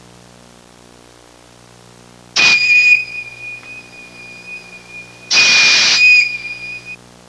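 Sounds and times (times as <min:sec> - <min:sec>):
train whistle: 0:02.4 - 0:07.0.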